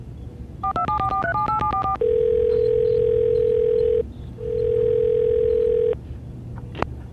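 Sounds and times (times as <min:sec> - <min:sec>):
touch-tone keypad beeps placing a call: 0:00.6 - 0:06.0.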